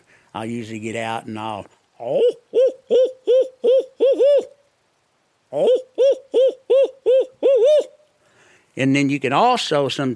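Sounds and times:
speech: 0:00.3 - 0:03.1, 0:05.5 - 0:05.9, 0:08.8 - 0:10.1
person imitating an owl with a loud hooting locator call: 0:01.9 - 0:04.8, 0:05.4 - 0:08.1.

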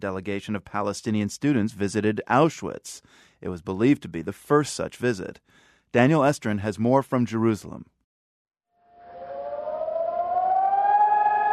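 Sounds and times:
speech: 0:00.0 - 0:08.0
civil defense siren wailing: 0:08.8 - 0:11.5.

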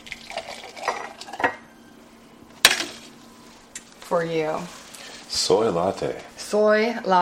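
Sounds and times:
frothy steamed milk from an espresso machine poured into a glass: 0:00.0 - 0:01.2
faint steady hum: 0:00.0 - 0:07.2
speech: 0:04.1 - 0:07.2.

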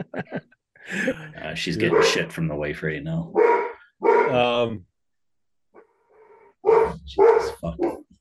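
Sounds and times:
laughter: 0:00.0 - 0:02.0
speech: 0:00.0 - 0:03.5, 0:04.3 - 0:04.9, 0:07.1 - 0:08.0
dog barking: 0:01.8 - 0:02.3, 0:03.3 - 0:04.5, 0:06.6 - 0:08.1.

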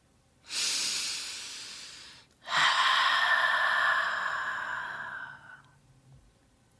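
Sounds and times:
slow deep conscious breathing in and out: 0:00.4 - 0:05.8.

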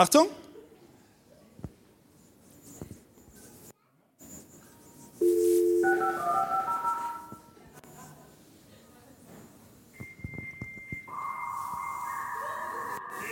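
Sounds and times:
speech: 0:00.0 - 0:00.4
faint room noise: 0:00.0 - 0:13.3
dial-up modem connecting: 0:05.2 - 0:07.4.

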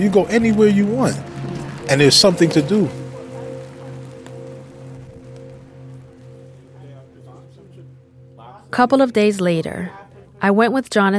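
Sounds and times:
speech: 0:00.0 - 0:01.3, 0:01.9 - 0:03.0, 0:08.8 - 0:11.1
steady dense rain falling outdoors: 0:00.0 - 0:08.9
constant low droning hum: 0:00.0 - 0:10.4.

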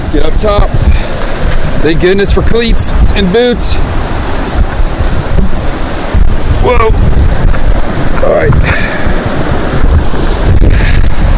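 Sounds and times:
roar of rushing water from a waterfall: 0:00.0 - 0:11.3
slight windy rumble: 0:00.0 - 0:11.3
speech: 0:00.1 - 0:00.9, 0:01.8 - 0:04.1, 0:06.6 - 0:07.1, 0:08.2 - 0:08.9.

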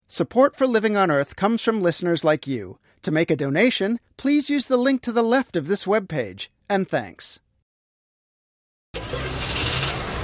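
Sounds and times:
speech: 0:00.1 - 0:07.4
truck engine starting and revving: 0:09.0 - 0:10.2.

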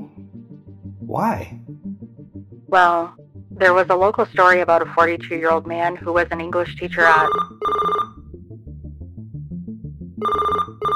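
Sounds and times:
speech: 0:01.1 - 0:01.7, 0:02.7 - 0:07.5
phone ringtone synthetic melody: 0:07.0 - 0:08.2, 0:10.2 - 0:10.9.

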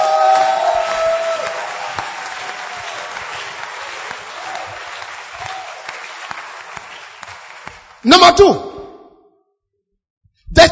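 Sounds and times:
church audience clapping and cheering during a sermon: 0:00.0 - 0:08.6
speech: 0:08.0 - 0:08.7.

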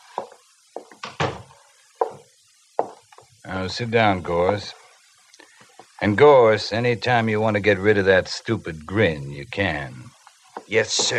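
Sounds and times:
wooden office door pulled shut with a heavy thud: 0:01.0 - 0:01.5
speech: 0:03.4 - 0:04.8, 0:06.0 - 0:10.1, 0:10.7 - 0:11.1.

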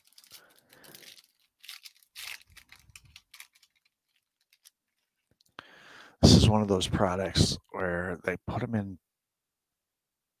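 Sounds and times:
foil trading card packs crinkling while being shuffled: 0:00.0 - 0:05.6
speech: 0:06.5 - 0:09.1.

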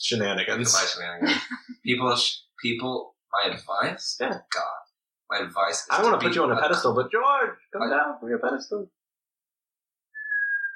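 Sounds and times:
speech: 0:00.0 - 0:09.0
person whistling a sustained note: 0:10.2 - 0:10.7.

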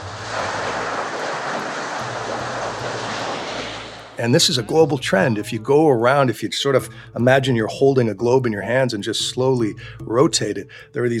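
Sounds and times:
raging floodwater surging onto the street: 0:00.0 - 0:04.9
speech: 0:04.2 - 0:11.1.

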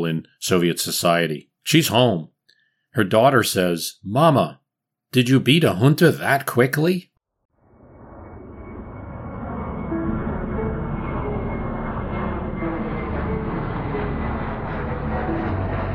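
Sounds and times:
speech: 0:00.0 - 0:02.3, 0:02.9 - 0:07.1
engines of three airplanes droning overhead: 0:07.6 - 0:15.9.

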